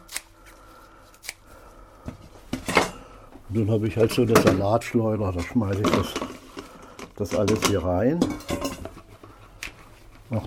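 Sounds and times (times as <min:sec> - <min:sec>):
scissors snipping fresh parsley in a salad bowl: 0:00.0 - 0:01.5
speech: 0:03.5 - 0:06.4, 0:07.2 - 0:08.9.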